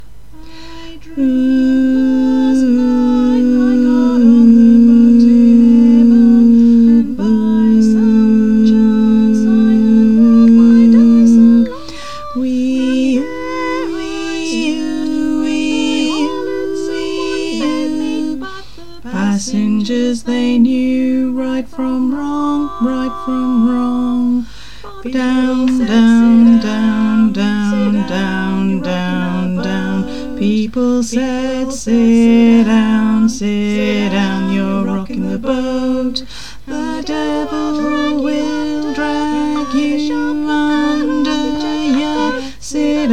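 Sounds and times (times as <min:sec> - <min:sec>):
church choir tenor and bass voices singing: 0:00.8 - 0:43.1.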